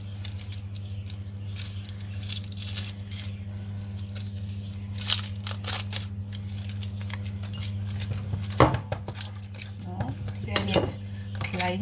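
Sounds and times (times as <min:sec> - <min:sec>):
steady low hum of kitchen appliances: 0:00.0 - 0:11.7
knife dicing onions on a cutting board: 0:08.3 - 0:09.2.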